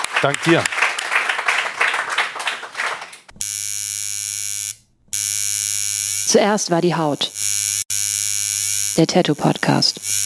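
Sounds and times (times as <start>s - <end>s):
crowd applause: 0.0s - 3.3s
speech: 0.2s - 0.8s, 6.3s - 7.4s, 9.0s - 10.2s
loud steady electric buzz: 3.3s - 10.2s.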